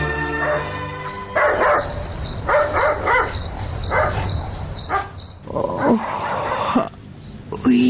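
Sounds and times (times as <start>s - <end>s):
chorus of crickets chirping at night: 0.2s - 7.8s
dog barking at night: 0.3s - 5.2s, 5.8s - 6.6s.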